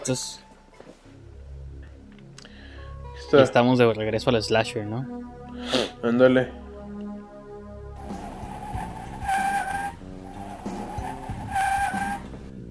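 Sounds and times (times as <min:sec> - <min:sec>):
speech: 0:00.0 - 0:00.4, 0:03.3 - 0:06.6
tires squealing in burning rubber skids: 0:08.0 - 0:12.5
car engine rumbling: 0:08.0 - 0:12.6.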